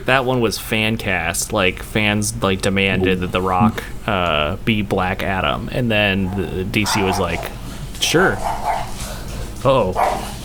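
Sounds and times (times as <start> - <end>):
speech: 0.0 - 8.7, 9.6 - 10.3
dog barking: 6.2 - 7.6, 8.4 - 9.0, 10.0 - 10.4.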